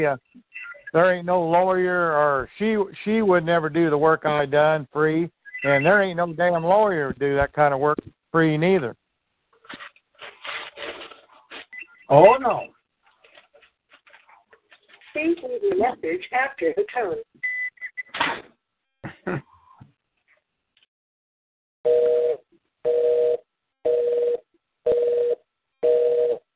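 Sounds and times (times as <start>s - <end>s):
speech: 0.0s - 9.0s, 12.1s - 12.8s, 15.2s - 17.5s, 19.0s - 19.5s, 21.8s - 26.4s
electronic phone ringing in an office: 21.9s - 26.4s.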